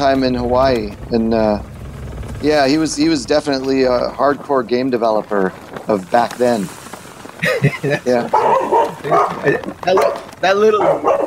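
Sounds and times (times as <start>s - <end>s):
speech: 0.0s - 1.7s, 2.4s - 6.8s, 7.4s - 11.2s
laughter: 7.4s - 9.8s
dog barking in short sharp whiny yaps: 8.2s - 11.2s.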